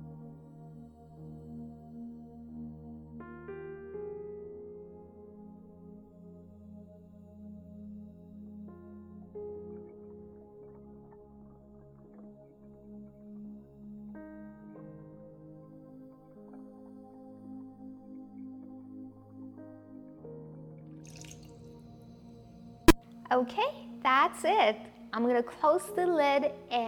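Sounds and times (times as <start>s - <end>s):
water poured into a blender jar with spinach banana frozen fruit and apple: 21.1s - 21.6s
speech: 23.3s - 26.8s.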